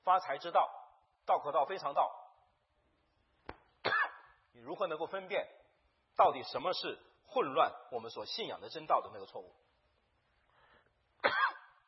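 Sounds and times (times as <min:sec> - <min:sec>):
speech: 0:00.1 - 0:02.2, 0:04.6 - 0:05.6, 0:06.2 - 0:09.6
person coughing: 0:03.8 - 0:04.3, 0:11.2 - 0:11.8.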